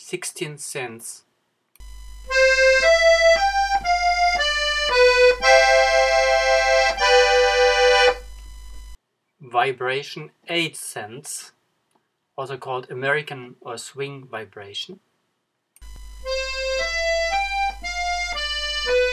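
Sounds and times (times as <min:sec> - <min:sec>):
accordion vibration: 0:02.3 - 0:08.3, 0:16.2 - 0:19.1.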